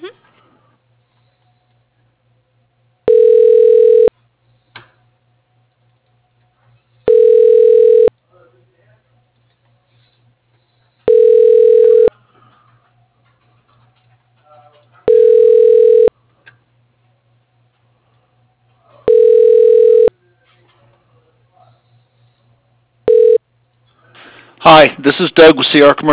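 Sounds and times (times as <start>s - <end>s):
telephone line ringing tone during call transfer: 3.1s - 4.1s, 7.1s - 8.1s, 11.1s - 12.1s, 15.1s - 16.1s, 19.1s - 20.1s, 23.1s - 23.4s
speech: 24.7s - 26.1s.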